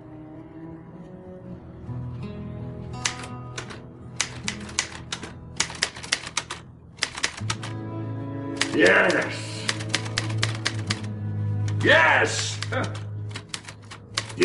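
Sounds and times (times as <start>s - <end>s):
soft music: 0.0s - 14.4s
typewriter keys clacking: 3.0s - 7.7s, 8.6s - 11.1s, 11.7s - 14.4s
speech: 8.8s - 9.5s, 11.8s - 13.0s.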